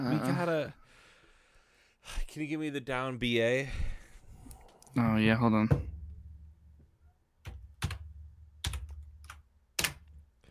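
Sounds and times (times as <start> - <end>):
speech: 0.0 - 0.8, 2.0 - 3.9, 5.0 - 5.9
heavy hollow keystrokes on a computer keyboard: 7.4 - 10.1.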